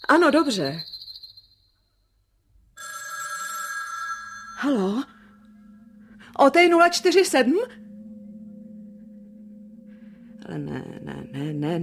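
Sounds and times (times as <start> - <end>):
speech: 0.0 - 0.9, 4.6 - 5.1, 6.4 - 7.8, 10.5 - 11.8
telephone bell ringing: 2.8 - 5.5
faint high tone: 4.3 - 11.8.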